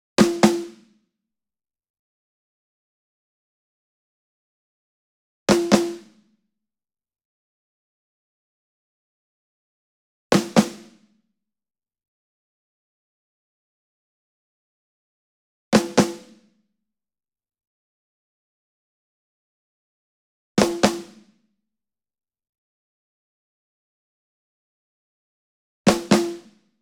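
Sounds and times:
ensemble snare drum group double: 0.2 - 0.8, 10.4 - 11.0, 15.8 - 16.4, 20.6 - 21.2, 25.9 - 26.5.

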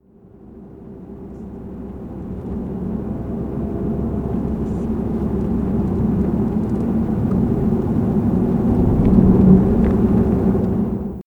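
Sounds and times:
opposing engine running: 0.0 - 11.2.

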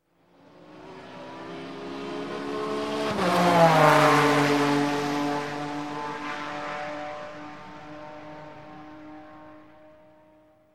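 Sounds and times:
race car on a straightaway: 0.5 - 10.3.

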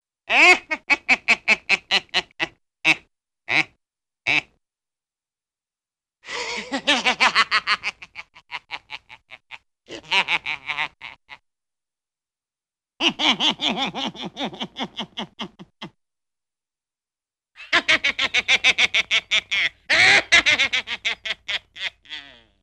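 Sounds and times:
evil wicked devilish little man laughing in a cartoon: 0.3 - 3.7, 6.3 - 11.4, 13.0 - 16.0, 17.6 - 22.6.

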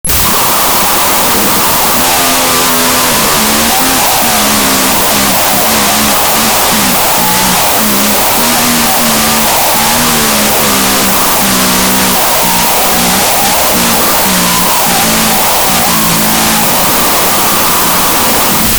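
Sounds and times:
walkie talkie garble: 0.0 - 18.7.

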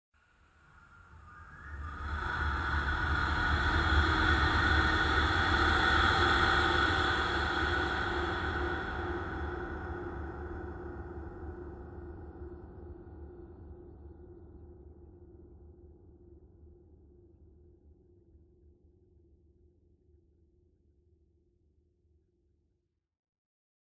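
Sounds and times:
airy vocal horror sound: 1.8 - 10.9.

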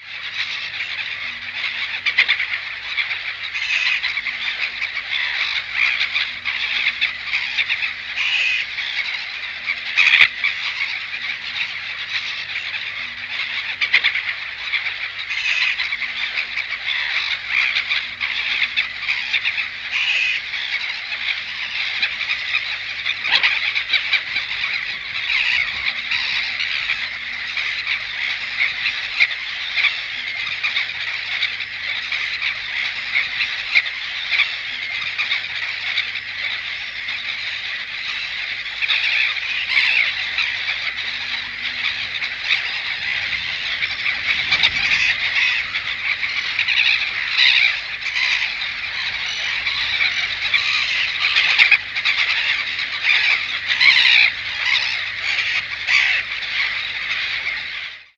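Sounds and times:
gull cluster: 0.0 - 58.1.

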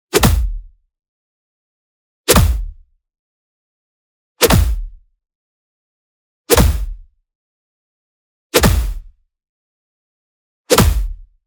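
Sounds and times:
punch hit: 0.1 - 0.6, 2.3 - 2.7, 4.4 - 4.9, 6.5 - 7.0, 8.6 - 9.1, 10.7 - 11.2.

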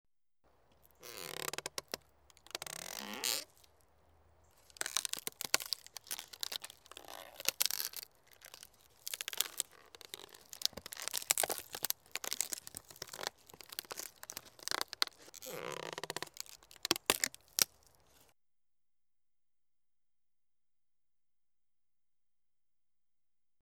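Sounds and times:
coffin opening: 0.6 - 18.0.

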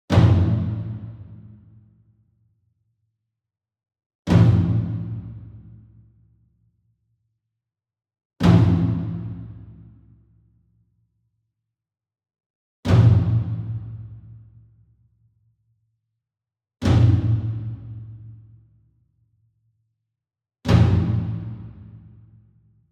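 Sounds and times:
single 28 inch taiko drum flam with a hard beater: 0.1 - 1.8, 4.3 - 5.8, 8.4 - 10.0, 12.9 - 14.4, 16.8 - 18.4, 20.7 - 22.4.

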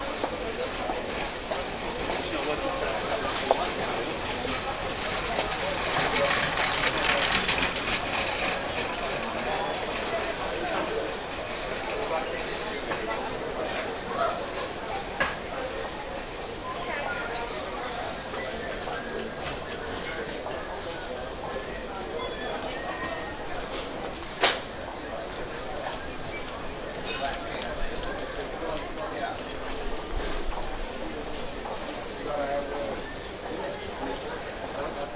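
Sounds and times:
airport crowd murmur: 0.0 - 35.1.

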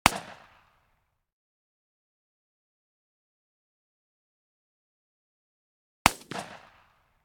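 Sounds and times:
long 12 gauge shotgun blast: 6.1 - 6.9.

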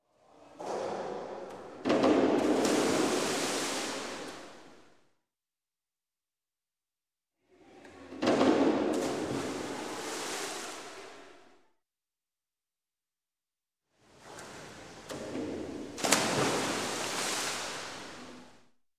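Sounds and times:
swimming pool: 0.0 - 5.0, 7.4 - 11.7, 14.0 - 18.8.

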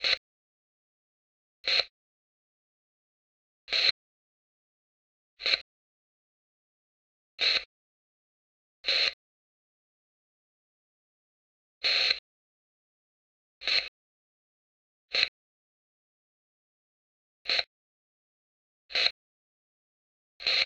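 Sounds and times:
walkie-talkie static: 0.0 - 0.2, 1.6 - 2.0, 3.7 - 4.0, 5.4 - 5.7, 7.4 - 7.7, 8.8 - 9.2, 11.8 - 12.3, 13.6 - 14.0, 15.1 - 15.4, 17.4 - 17.7, 18.9 - 19.2, 20.4 - 20.6.

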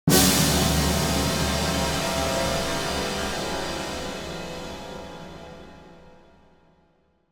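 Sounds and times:
symphonic hit: 0.1 - 5.8.

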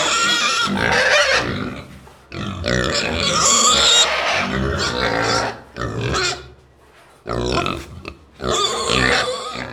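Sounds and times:
pigs in a stable giving rough grunts and low snuffling grunts: 0.0 - 6.6, 7.2 - 9.7.

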